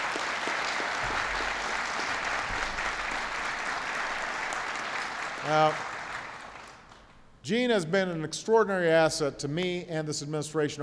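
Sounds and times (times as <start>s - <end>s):
applause from a large audience: 0.0s - 7.0s
speech: 5.5s - 5.9s, 7.4s - 10.8s.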